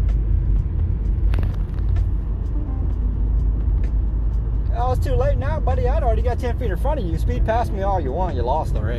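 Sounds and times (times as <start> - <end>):
car engine rumble pulling away off the line in a street race: 0.0 - 8.9
speech: 5.0 - 8.9.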